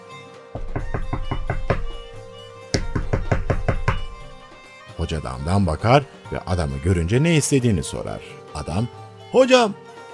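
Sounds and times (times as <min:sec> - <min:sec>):
man knocking forcefully on a house door: 0:00.6 - 0:04.5
speech: 0:05.1 - 0:09.8.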